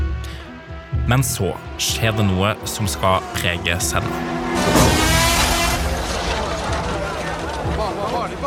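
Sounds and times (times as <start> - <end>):
speech: 1.1 - 4.8
Formula 1 race cars screaming past during a qualifying session: 2.6 - 8.4.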